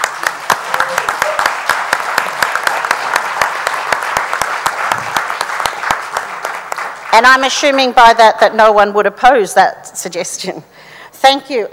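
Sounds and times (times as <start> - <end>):
crowd clapping enthusiastically: 0.0 - 7.8
speech: 7.1 - 11.7.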